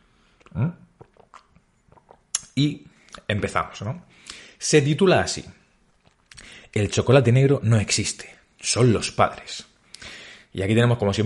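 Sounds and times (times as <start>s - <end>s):
person sipping and swallowing water from a mug: 0.3s - 3.3s, 5.9s - 6.6s
small wet mouth clicks: 0.4s - 3.3s
speech: 2.6s - 5.6s, 6.8s - 9.7s, 10.5s - 11.2s.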